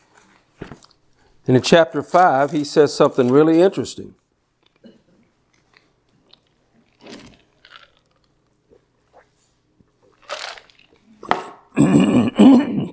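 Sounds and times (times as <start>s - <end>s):
speech: 1.5s - 4.2s
coughing from someone irritated by pollen outdoors: 11.2s - 12.9s
throat clearing from someone irritated by pollen outdoors: 11.2s - 12.9s.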